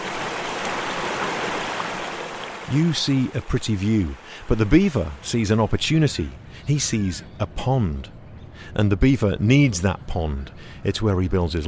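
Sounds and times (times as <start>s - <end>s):
flowing creek water: 0.0s - 7.2s
speech: 2.7s - 11.6s.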